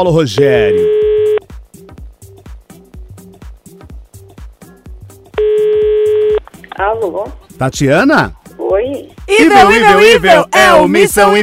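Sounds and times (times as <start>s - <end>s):
speech: 0.0s - 1.1s, 6.8s - 11.4s
long steady telephone tone: 0.5s - 1.5s, 5.4s - 6.4s.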